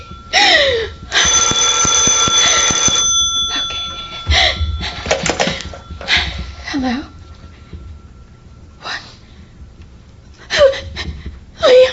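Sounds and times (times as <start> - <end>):
telephone ringing: 0.0 - 8.8.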